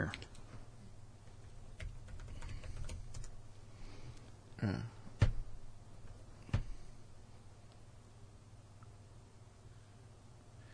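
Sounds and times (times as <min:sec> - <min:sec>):
low steady hum: 0:00.0 - 0:10.7
typing on a computer keyboard: 0:01.4 - 0:03.4, 0:05.2 - 0:05.4
speech: 0:04.6 - 0:05.0.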